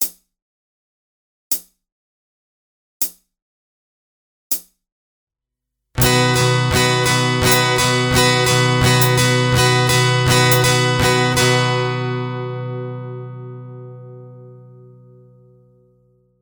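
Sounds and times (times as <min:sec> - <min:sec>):
slow guitar strumming in sixteenth notes with capo 4: 0:06.0 - 0:16.3.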